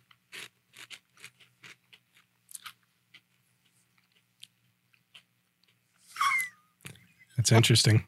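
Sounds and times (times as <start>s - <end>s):
raw vegetable snack being chewed: 0.0s - 5.8s
speech: 7.5s - 8.0s.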